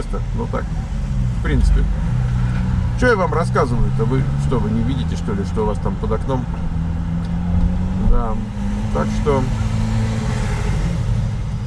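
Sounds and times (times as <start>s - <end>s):
speech: 0.0s - 2.4s, 3.0s - 6.8s, 8.1s - 9.6s
car engine rumble while driving slowly along a street: 0.0s - 11.6s.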